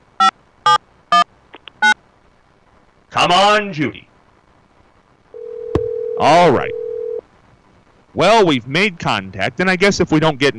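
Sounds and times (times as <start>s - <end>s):
short buzzy electronic tones of a phone number being dialed: 0.1s - 2.0s, 5.4s - 7.2s
speech: 3.2s - 4.1s, 6.2s - 6.8s, 8.2s - 10.5s.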